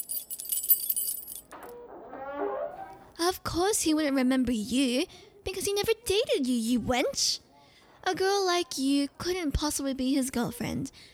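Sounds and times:
bunch of keys jangling as they are handled: 0.0 - 1.7
speech: 3.3 - 7.4, 8.0 - 11.1.

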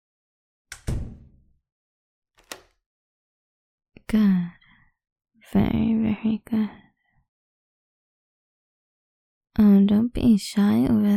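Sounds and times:
heavy door thudding shut backstage: 0.7 - 1.4
lock being turned click: 2.4 - 2.8
speech: 4.1 - 4.6, 5.4 - 6.8, 9.6 - 11.1.

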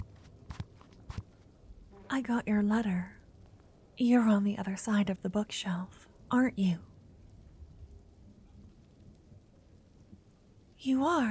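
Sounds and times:
soft footsteps: 0.0 - 2.1
speech: 2.1 - 3.2, 4.0 - 6.9, 10.8 - 11.3.

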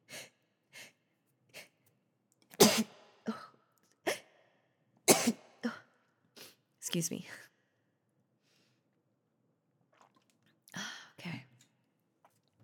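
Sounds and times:
person sneezing: 2.6 - 3.0, 5.1 - 5.5
speech: 6.9 - 7.5.

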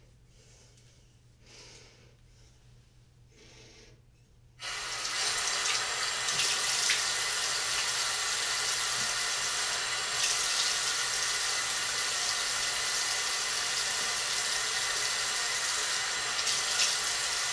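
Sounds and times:
tap water running while something is washed off: 4.6 - 17.5.

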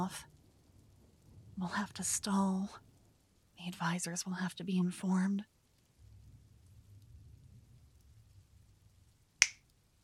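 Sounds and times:
speech: 0.0 - 0.3, 1.6 - 2.8, 3.6 - 5.5
low rumbling noise: 0.0 - 10.0
finger snap: 9.4 - 9.6.

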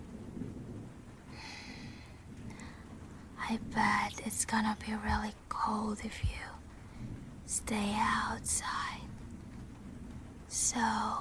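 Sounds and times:
low rolling rumble of thunder: 0.0 - 11.2
steady rain pattering: 0.0 - 11.2
speech: 3.5 - 6.6, 7.5 - 9.0, 10.5 - 11.2.

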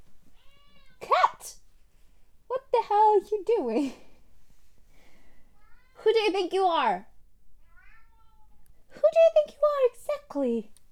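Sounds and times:
cat meowing: 0.4 - 1.0, 7.6 - 8.6
speech: 3.2 - 4.0, 6.2 - 7.1, 9.2 - 10.8.

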